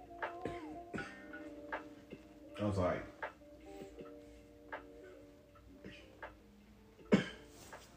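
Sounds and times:
coughing: 0.3s - 1.5s, 7.0s - 7.6s
speech: 2.6s - 3.1s.

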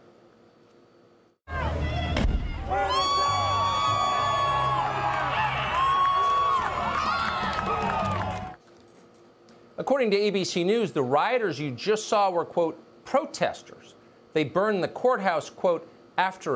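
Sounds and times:
chaotic crowd of rioters yelling and whooping: 1.5s - 8.6s
sharp loud bang: 2.0s - 2.8s
speech: 10.0s - 16.5s.

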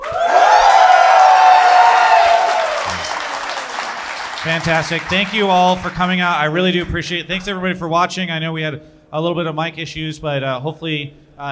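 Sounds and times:
large audience cheering, shouting and whooping: 0.0s - 7.0s
speech: 4.4s - 11.5s.

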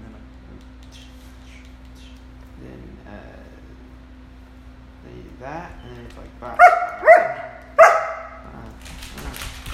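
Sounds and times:
speech: 5.4s - 6.9s
giant dog barking: 6.6s - 8.5s.

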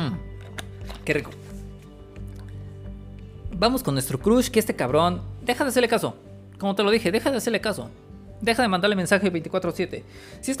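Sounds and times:
speech: 1.0s - 1.4s, 3.6s - 10.5s
person sipping and swallowing water: 2.2s - 2.7s.

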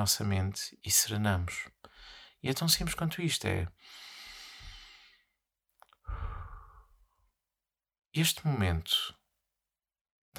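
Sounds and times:
speech: 0.0s - 4.1s, 8.2s - 9.2s
slow deliberate inhale and exhale: 3.8s - 5.3s, 6.0s - 7.2s.

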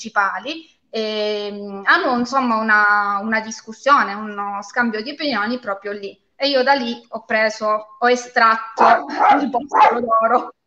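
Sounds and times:
speech: 0.0s - 10.6s
dog barking in a short sharp burst: 8.8s - 10.5s.

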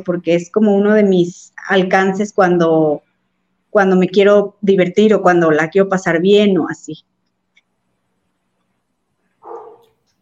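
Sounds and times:
speech: 0.0s - 3.1s, 3.7s - 7.1s
dog barking: 9.4s - 10.0s.

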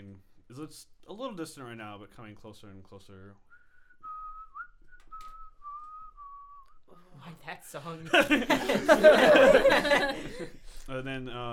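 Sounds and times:
speech: 0.5s - 3.5s, 7.3s - 11.5s
melodic whistle from a pipe playing a slow tune: 3.4s - 6.9s
laughter: 8.0s - 10.8s.

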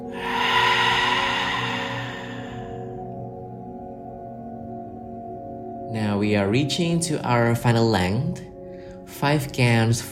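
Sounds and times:
deep breath out through the open mouth during a guided breathing exercise: 0.0s - 3.1s
speech: 5.9s - 8.5s, 9.2s - 10.0s.

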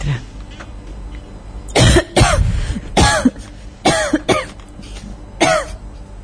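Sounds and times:
person in a long coughing fit: 1.7s - 4.6s, 5.4s - 5.8s.

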